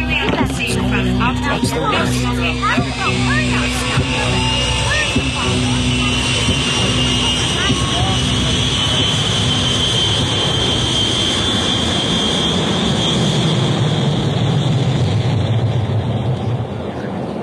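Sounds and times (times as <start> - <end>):
voices murmuring: 0.0 - 10.2, 16.3 - 17.4
airplane engine droning with high whine: 0.0 - 17.4.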